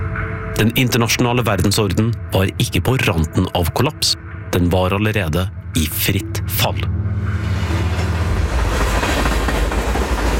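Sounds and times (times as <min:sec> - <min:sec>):
speech: 0:00.6 - 0:07.4
train rumbling along the rails: 0:06.5 - 0:10.3.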